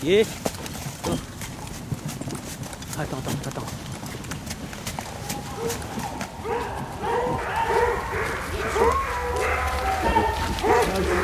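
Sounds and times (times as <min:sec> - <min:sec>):
speech: 0:00.0 - 0:01.3, 0:03.0 - 0:03.9
deer hoofbeats: 0:00.0 - 0:11.2
rustling in woods: 0:00.3 - 0:11.2
pack of hunting hounds baying in woods chasing a female deer: 0:05.1 - 0:11.2.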